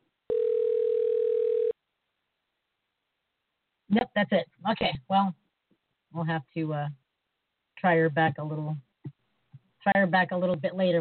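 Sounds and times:
telephone ringback tone on an unanswered call: 0.3s - 1.8s
speech: 3.9s - 5.4s, 6.1s - 7.0s, 7.8s - 8.9s, 9.9s - 10.9s.

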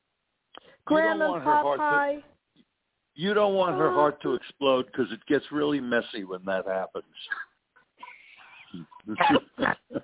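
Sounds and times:
speech: 0.8s - 2.3s, 3.2s - 7.4s, 8.7s - 10.0s
pig-like snorts and snore-like nasal rasps: 8.7s - 9.9s.

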